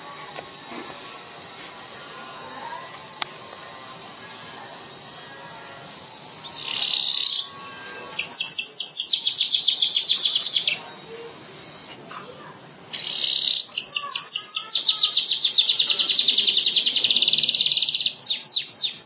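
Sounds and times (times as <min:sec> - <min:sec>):
bird chattering: 0:06.4 - 0:07.5, 0:08.2 - 0:10.8, 0:12.9 - 0:19.0.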